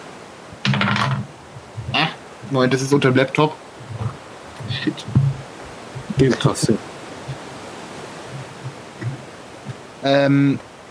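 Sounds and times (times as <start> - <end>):
dice rolling across a tabletop: 0.7 - 1.3
speech: 2.5 - 3.7, 4.7 - 5.2, 6.2 - 6.9, 10.0 - 10.7.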